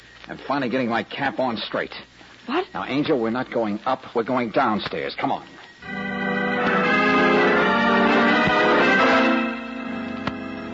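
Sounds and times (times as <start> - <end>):
speech: 0.3 - 6.0
summoning bell ringing: 5.8 - 10.7.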